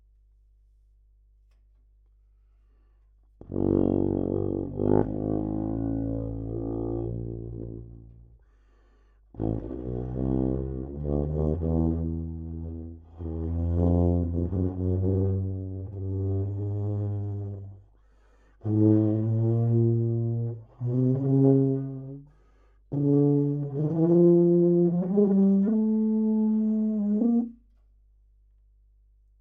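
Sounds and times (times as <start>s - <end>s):
trombone: 3.4s - 8.1s, 9.4s - 17.8s, 18.6s - 22.3s, 22.9s - 27.6s.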